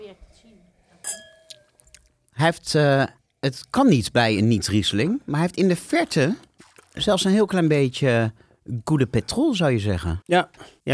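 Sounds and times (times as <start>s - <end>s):
glasses clinking in a toast: 1.0s - 1.7s
speech: 2.4s - 10.9s.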